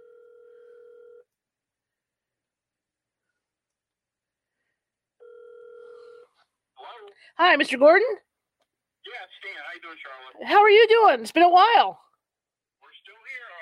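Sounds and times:
phone line ringing on the caller's end: 0.0 - 1.3, 5.2 - 6.3
speech: 7.1 - 8.2, 9.0 - 12.0.

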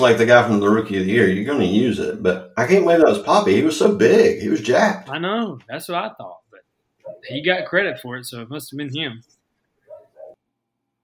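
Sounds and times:
speech: 0.0 - 6.4, 7.2 - 9.3
pet dog barking: 7.0 - 7.3, 9.8 - 10.4.

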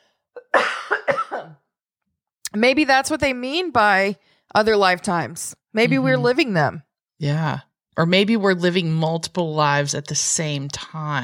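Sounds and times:
person coughing raspily: 0.4 - 1.6
speech: 2.5 - 11.2.

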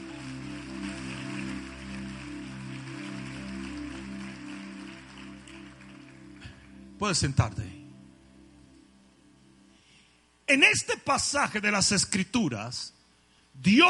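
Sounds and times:
church audience clapping: 0.0 - 7.2
speech: 7.0 - 7.8, 10.5 - 13.0, 13.6 - 13.8.

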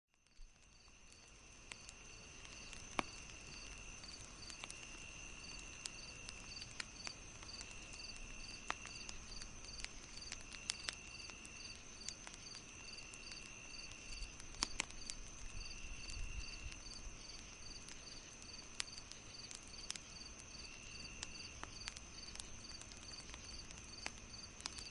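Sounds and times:
burning wood fire crackling and popping: 0.1 - 24.9
crickets chirping at night after sunset: 0.2 - 24.9.

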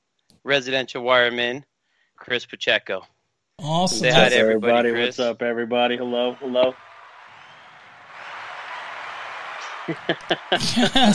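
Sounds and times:
speech: 0.4 - 6.8, 9.9 - 11.1
crowd cheering: 3.8 - 11.1
laughter: 3.9 - 6.7, 9.6 - 11.1.

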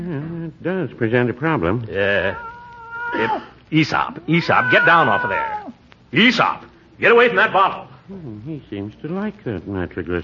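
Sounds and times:
speech: 0.0 - 2.5, 3.1 - 10.2
cat meowing with a drawn-out rising and falling cry: 2.2 - 3.5, 4.1 - 5.9.

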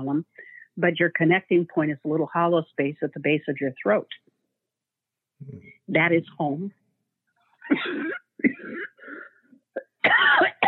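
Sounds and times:
speech: 0.0 - 4.3, 5.4 - 6.8, 7.7 - 8.8
person coughing: 7.7 - 10.6.

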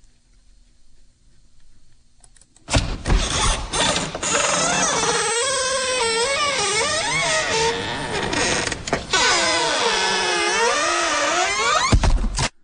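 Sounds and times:
squeaky door creaking open and shut: 2.8 - 12.2.

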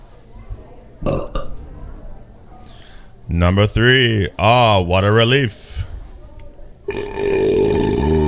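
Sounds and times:
speech: 1.0 - 1.4, 3.3 - 5.7
loud drawn-out rough belch: 1.0 - 1.6, 6.9 - 8.2.

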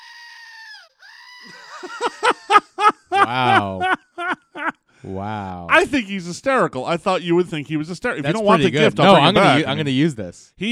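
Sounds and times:
screaming goat toy electronic scream: 0.0 - 1.7
speech: 1.4 - 3.9, 5.0 - 10.7
laughter: 1.5 - 4.8, 8.3 - 9.8.

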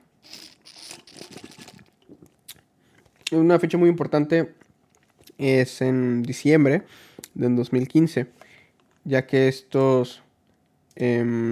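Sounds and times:
slurping and swallowing cold lemonade: 0.2 - 3.3
speech: 3.3 - 4.6, 5.4 - 8.4, 9.0 - 10.2, 11.0 - 11.5.

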